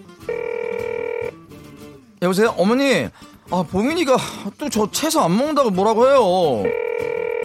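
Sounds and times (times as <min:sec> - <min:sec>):
telephone ringing: 0:00.2 - 0:01.4, 0:06.6 - 0:07.4
speech: 0:02.2 - 0:07.2.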